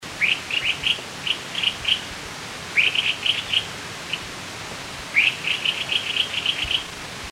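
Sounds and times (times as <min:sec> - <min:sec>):
streak-breasted scimitar babbler birdcall: 0:00.2 - 0:02.1, 0:02.7 - 0:04.3, 0:05.1 - 0:07.0.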